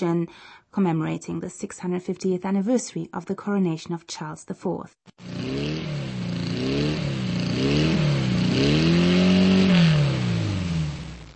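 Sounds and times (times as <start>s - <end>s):
speech: 0.0s - 5.9s
Porsche sports car engine revving: 5.2s - 11.3s.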